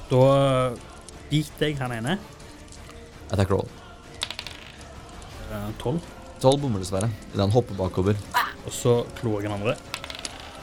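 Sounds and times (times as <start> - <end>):
speech: 0.1 - 2.4, 3.3 - 3.8, 5.5 - 9.9
dice tumbling across a tabletop during a tabletop role-playing game: 4.2 - 4.9, 9.7 - 10.6.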